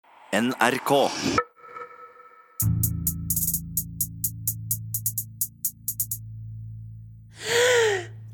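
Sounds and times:
speech: 0.3 - 1.5
quick rhythmic ticking: 2.6 - 6.3
sharp deep inhale: 7.3 - 8.2
loud gasping release of breath: 7.4 - 8.2.

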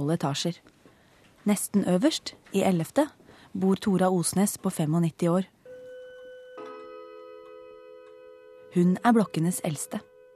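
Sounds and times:
speech: 0.0 - 0.7, 1.4 - 5.6, 8.7 - 10.1
resonant chime-like clock strikes: 5.6 - 10.3.

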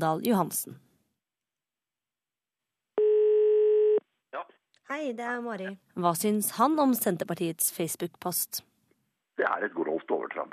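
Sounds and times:
speech: 0.0 - 0.9, 4.9 - 8.7, 9.4 - 10.5
electronic telephone ringback tone of an outgoing call: 3.0 - 4.0.

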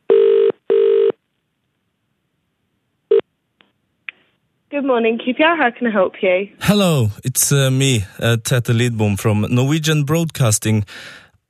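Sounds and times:
telephone call ringing out: 0.1 - 1.2
speech: 4.7 - 11.2.

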